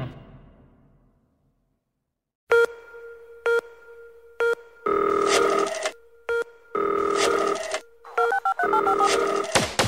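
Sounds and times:
electronic cell phone ringtone jingle over punchy beats: 2.5s - 9.6s.

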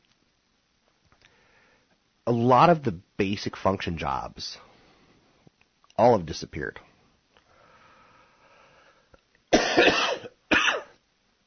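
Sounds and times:
speech: 2.3s - 4.7s, 6.0s - 6.9s
person coughing: 9.5s - 11.0s.

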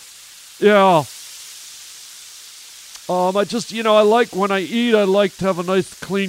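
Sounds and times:
sizzling hiss from a hot wok: 0.0s - 6.2s
speech: 0.6s - 1.1s, 3.1s - 6.2s.

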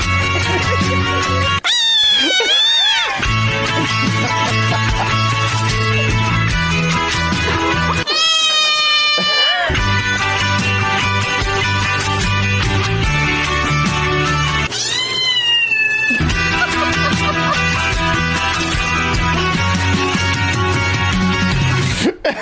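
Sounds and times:
music playing: 0.0s - 1.7s, 2.6s - 8.3s, 9.2s - 14.7s, 16.2s - 22.1s
laughter: 0.0s - 5.7s, 7.1s - 9.9s, 16.2s - 18.9s, 21.9s - 22.4s
cats meowing along to a song: 1.4s - 3.3s, 7.9s - 9.9s, 14.6s - 16.4s.

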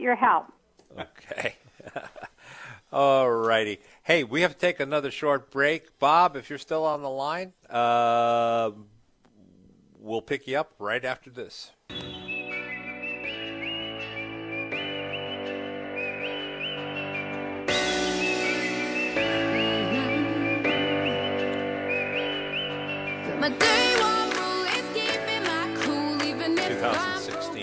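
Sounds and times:
speech: 0.0s - 2.2s, 2.9s - 8.9s, 10.0s - 12.0s
bright whistled melody: 11.9s - 24.2s
full instrumental backing music: 11.9s - 27.6s.

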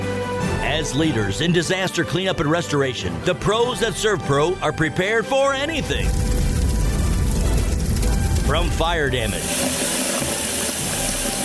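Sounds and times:
speech: 0.8s - 6.4s, 8.5s - 9.8s
running water rushing: 5.7s - 11.4s.

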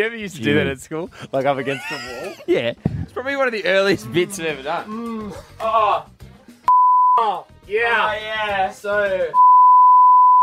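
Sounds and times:
speech: 0.0s - 6.2s, 7.2s - 9.5s
laughter: 1.2s - 3.2s
pure-tone censor bleep: 6.7s - 7.2s, 9.4s - 10.4s.

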